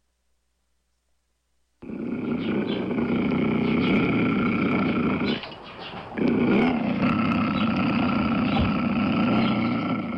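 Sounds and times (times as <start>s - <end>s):
mountain lion roaring in the Santa Cruz Mountains: 1.8s - 5.6s, 6.2s - 10.1s.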